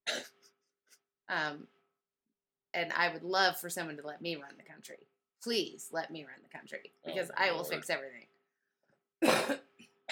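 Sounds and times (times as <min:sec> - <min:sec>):
speech: 0:01.3 - 0:01.8, 0:02.8 - 0:08.3, 0:09.2 - 0:10.1
harsh throat clearing with raspy hacks: 0:09.2 - 0:10.1.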